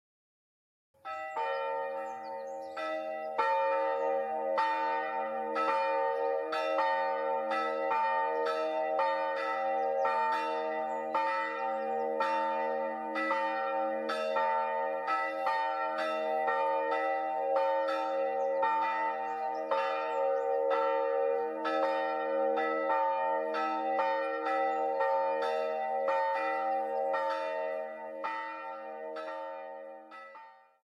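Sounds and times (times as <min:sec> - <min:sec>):
village church bell ringing in Goudswaard: 0:01.0 - 0:30.8.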